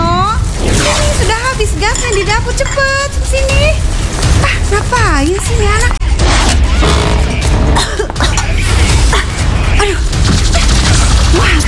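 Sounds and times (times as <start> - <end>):
loud constant rumbling noise: 0.0 - 11.6
speech: 2.5 - 3.9, 4.7 - 6.0
woman coughing from cigarette smoke: 7.6 - 10.8.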